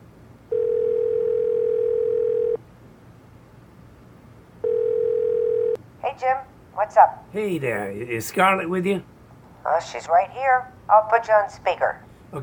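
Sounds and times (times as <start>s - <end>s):
telephone tone while a call is placed: 0.5s - 2.6s, 4.6s - 5.8s
speech: 6.2s - 12.4s.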